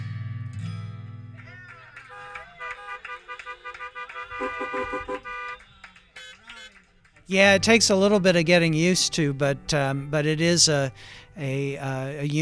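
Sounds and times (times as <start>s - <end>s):
car horns honking outdoors: 1.7s - 6.9s
speech: 4.7s - 5.2s, 7.3s - 12.3s.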